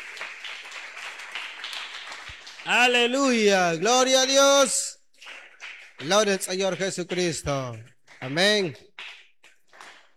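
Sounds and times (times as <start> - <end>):
congregation applause at a Pentecostal church service: 0.0 - 10.1
speech: 2.6 - 4.9, 6.0 - 8.9.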